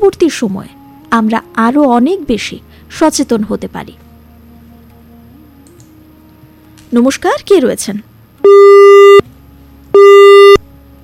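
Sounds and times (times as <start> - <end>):
speech: 0.0 - 4.0, 6.9 - 9.3
telephone busy signal on a failed listener call-in: 8.4 - 9.2, 10.0 - 10.6.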